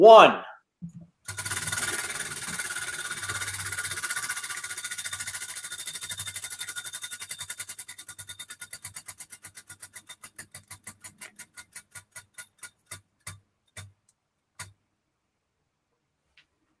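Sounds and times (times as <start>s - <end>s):
speech: 0.0s - 0.4s
prize wheel spinning and ticking: 1.3s - 13.9s.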